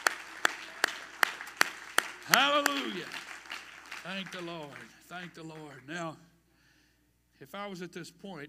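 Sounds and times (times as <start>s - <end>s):
continuous scattered applause: 0.0s - 5.9s
crowd clapping in a steady unison beat: 0.0s - 6.0s
speech: 2.3s - 3.3s, 4.0s - 6.3s, 7.4s - 8.4s.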